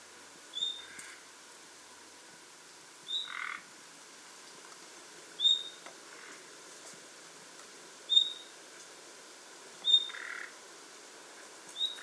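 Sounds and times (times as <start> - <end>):
quiet steady background noise: 0.0 - 12.0
common nightingale giving clear high whistled notes: 0.6 - 0.9, 5.4 - 5.8, 8.1 - 8.5.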